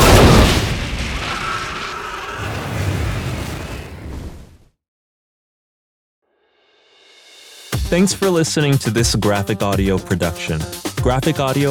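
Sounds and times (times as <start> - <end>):
gasoline-filled metal jerry can exploding after tracer rounds ignite it: 0.0 - 4.6
speech: 7.9 - 11.6.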